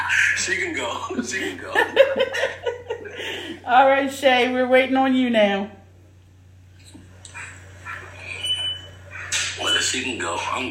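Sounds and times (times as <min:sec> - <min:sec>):
voices: 0:00.0 - 0:02.2, 0:06.8 - 0:10.6
laughter: 0:00.0 - 0:03.6
steady low hum: 0:00.0 - 0:10.6
speech: 0:00.4 - 0:05.8, 0:09.8 - 0:10.6
washing machine high electronic beep: 0:08.2 - 0:10.1.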